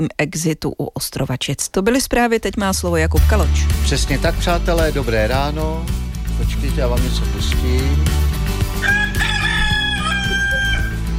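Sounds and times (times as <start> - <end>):
speech: 0.0 - 9.0
rooster crowing: 8.8 - 11.1.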